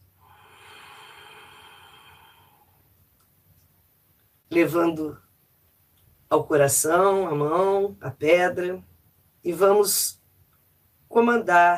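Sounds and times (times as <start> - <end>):
slow deep inhalation during a guided breathing meditation: 0.2 - 2.9
speech: 4.5 - 5.2, 6.3 - 10.2, 11.1 - 11.7.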